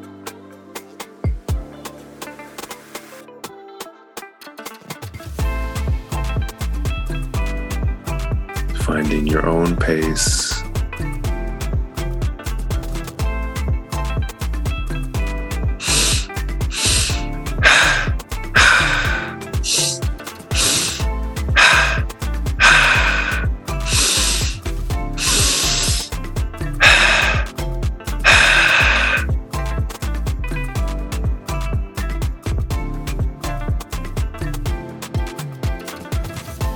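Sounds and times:
soft sustained music: 0.0s - 4.6s, 5.3s - 36.7s
speech: 8.9s - 10.6s
breathwork with rapid sharp inhales and exhales in pairs: 15.8s - 26.1s, 26.8s - 27.5s, 28.2s - 29.3s.

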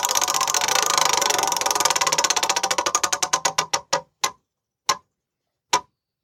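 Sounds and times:
game show prize wheel spinning and clicking: 0.0s - 4.0s.

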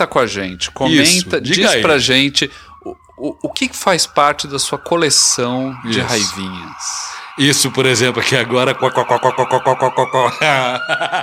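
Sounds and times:
ambulance siren passing in a street: 0.0s - 11.2s
speech: 0.0s - 11.2s
laughter: 8.4s - 11.2s.

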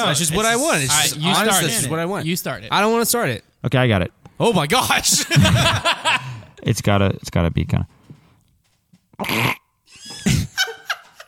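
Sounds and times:
speech: 0.0s - 8.0s, 9.2s - 9.6s
laughter: 4.8s - 6.5s, 9.9s - 11.2s
wet fart noise: 9.1s - 9.7s.

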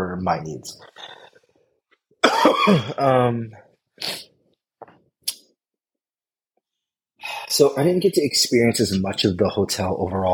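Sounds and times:
speech: 0.2s - 1.2s, 2.2s - 4.2s, 7.5s - 10.3s
raspy hacking coughing fit: 2.2s - 3.1s.

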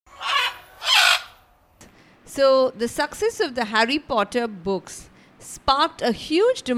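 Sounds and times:
owl giving harsh raspy screeches: 0.1s - 1.5s
speech: 2.4s - 6.7s.

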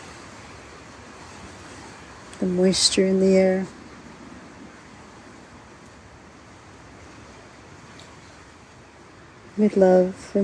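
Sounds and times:
faint wind over water: 0.0s - 10.4s
surf washing onto shore: 0.0s - 10.4s
speech: 2.4s - 3.8s, 9.6s - 10.4s.

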